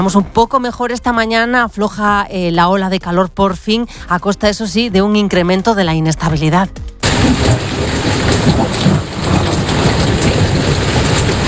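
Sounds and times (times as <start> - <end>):
speech: 0.0 - 7.7
low thunder rumbling: 0.0 - 11.4
heavy rain in a thunderstorm: 7.0 - 11.4.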